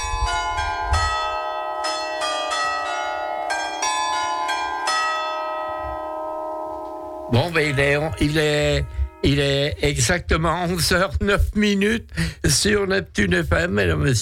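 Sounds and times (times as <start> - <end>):
church bells pealing: 0.0 - 9.8
speech: 7.3 - 14.2.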